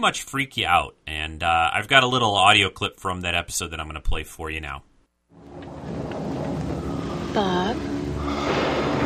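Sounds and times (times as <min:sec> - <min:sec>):
speech: 0:00.0 - 0:04.9, 0:07.4 - 0:07.9
deep continuous thunder rumbling: 0:05.4 - 0:09.0
steady dense rain in a thunderstorm: 0:05.4 - 0:09.0.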